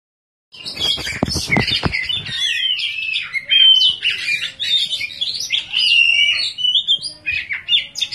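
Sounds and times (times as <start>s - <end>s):
Oriental magpie-robin song: 0.5s - 8.1s.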